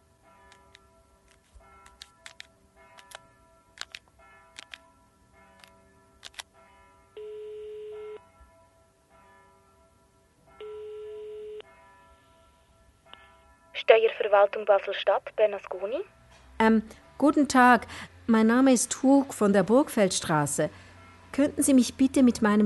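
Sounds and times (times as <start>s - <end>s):
long steady telephone ringing tones: 7.2s - 8.2s, 10.6s - 11.7s
speech: 13.9s - 20.8s, 21.4s - 22.6s.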